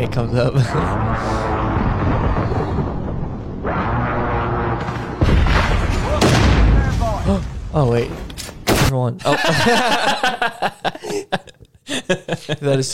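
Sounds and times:
speech: 0:00.0 - 0:02.9, 0:07.3 - 0:08.2, 0:08.9 - 0:11.5, 0:12.1 - 0:12.9
video game battle noise rumbling: 0:00.6 - 0:07.6
precision airstrike explosions in a video game: 0:00.8 - 0:08.0
laughter: 0:09.2 - 0:12.9.

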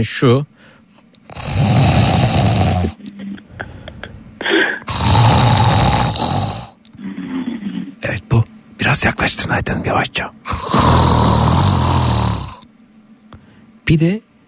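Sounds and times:
speech: 0:00.0 - 0:00.5, 0:08.9 - 0:11.3, 0:13.9 - 0:14.3
man snoring loudly with long rasping snores: 0:01.3 - 0:03.0, 0:04.6 - 0:07.9, 0:10.5 - 0:12.6.

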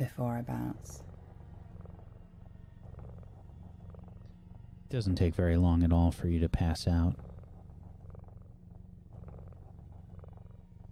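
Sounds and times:
speech: 0:00.0 - 0:01.1, 0:04.9 - 0:07.3
cat purring: 0:00.0 - 0:10.8.

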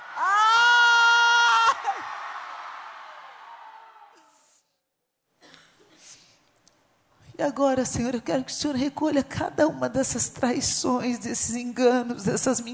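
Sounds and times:
crowd screaming together: 0:00.0 - 0:04.4
speech: 0:07.4 - 0:12.7.

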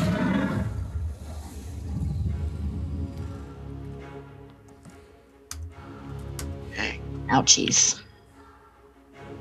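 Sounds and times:
creature roaring as it slashes out, sound effect: 0:00.0 - 0:03.4
speech: 0:07.3 - 0:08.0.

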